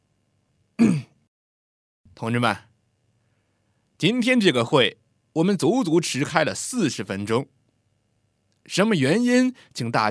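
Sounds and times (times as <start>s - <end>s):
man clearing his throat: 0.8s - 1.2s
speech: 2.2s - 2.7s, 4.0s - 7.6s, 8.7s - 10.1s.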